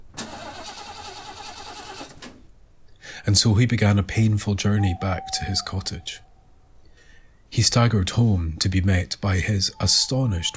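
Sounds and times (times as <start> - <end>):
pickup truck starter cranking, failing to start: 0.0 - 2.6
speech: 3.3 - 6.3, 7.5 - 10.5.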